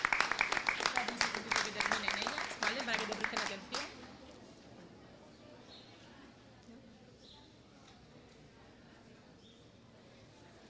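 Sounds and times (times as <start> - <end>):
audience at a morning event applauding: 0.0 - 3.9.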